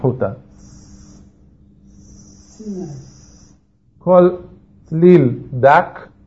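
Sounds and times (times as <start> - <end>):
speech: 0.0 - 0.7, 2.6 - 3.1, 4.0 - 6.1
voice making a snake-like hissing s for the Hebrew letter samekh: 0.5 - 3.7
short low vocal murmur: 2.0 - 3.6.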